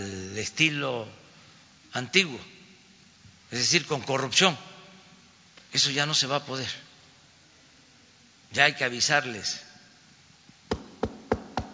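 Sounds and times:
speech: 0.4 - 1.2, 1.9 - 2.6, 3.5 - 4.7, 5.7 - 6.8, 8.5 - 9.6
firm knocking on a door: 10.7 - 11.7.

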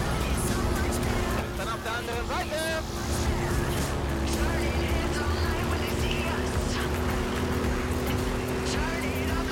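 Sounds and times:
road noise: 0.0 - 9.5
video game truck engine droning: 0.0 - 9.5
voice: 1.4 - 2.9.

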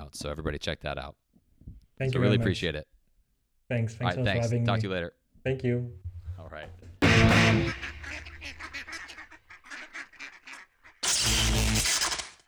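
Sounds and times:
speech: 0.1 - 1.2, 2.0 - 2.9, 3.7 - 8.7
duck quacking loudly: 7.0 - 11.9.

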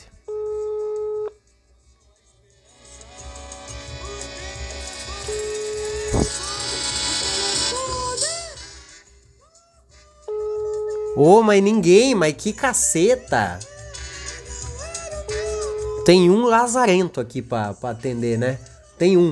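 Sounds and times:
telephone ringback tone on an outgoing call: 0.3 - 1.3, 10.3 - 11.4, 15.3 - 16.3
speech: 11.2 - 13.7, 16.0 - 19.3.

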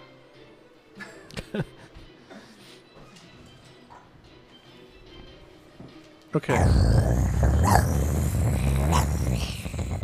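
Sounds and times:
speech: 1.5 - 1.9, 6.3 - 7.0
dogs growling low: 6.4 - 10.0.

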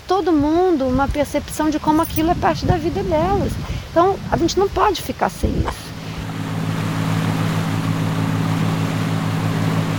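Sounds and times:
wind at sea: 0.0 - 9.9
speech: 0.1 - 5.9
boat engine droning while moving out to sea: 5.8 - 9.9.

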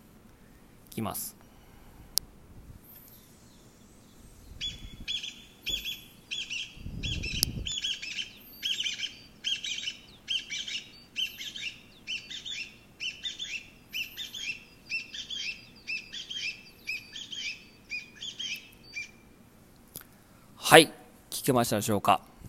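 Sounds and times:
faint outdoor ambience: 0.0 - 22.4
speech: 1.0 - 1.4, 20.7 - 22.4
Chinese bamboo partridge calling: 2.9 - 19.3.

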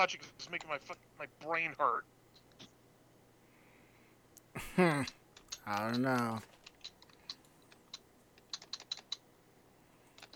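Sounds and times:
speech: 0.0 - 2.2, 4.6 - 6.6
typing hard on computer keyboard: 5.4 - 9.2, 10.2 - 10.3.

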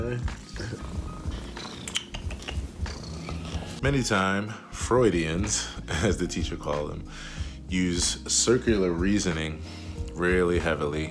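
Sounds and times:
speech: 0.0 - 0.8, 3.8 - 11.0
cat purring: 0.2 - 3.8
faint higher chirps and clicks: 1.5 - 3.7.

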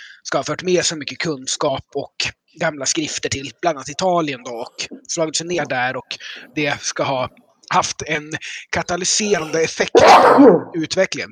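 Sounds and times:
speech: 0.2 - 11.3
sneeze: 9.4 - 10.8.

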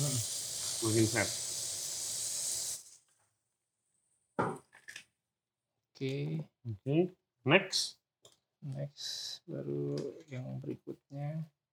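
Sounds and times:
nitrogen sprayed onto a cold dessert hissing: 0.0 - 3.0
speech: 0.8 - 1.4, 6.0 - 8.0, 8.6 - 11.6.

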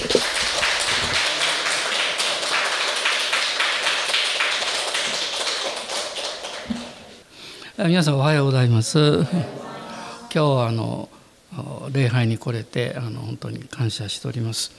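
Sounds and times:
audience applause at a church worship service welcoming a guest speaker: 0.0 - 7.2
speech: 7.8 - 9.7, 10.3 - 14.7.

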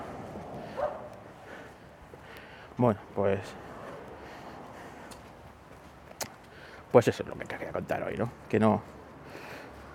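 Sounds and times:
dog barking: 0.7 - 1.2
speech: 2.8 - 3.7, 6.9 - 9.4.

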